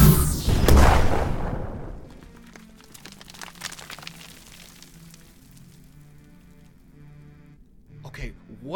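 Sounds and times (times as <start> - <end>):
plasma cannon blast: 0.0 - 2.0
crackles and small pops: 1.7 - 6.8.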